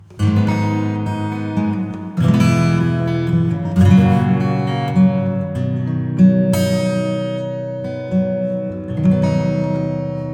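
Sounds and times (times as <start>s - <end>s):
acoustic sound with plate reverb: 0.0s - 10.3s.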